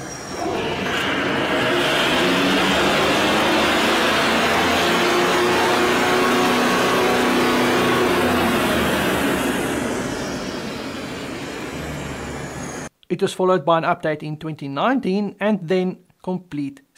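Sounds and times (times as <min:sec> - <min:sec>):
aircraft diesel engine running on test bench: 0:00.0 - 0:12.9
speech: 0:13.2 - 0:16.9.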